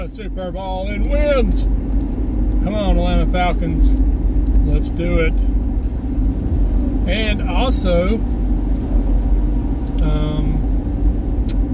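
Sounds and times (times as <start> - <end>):
car engine and road rumble while driving: 0.0 - 11.7
speech: 0.1 - 5.6, 7.1 - 8.4.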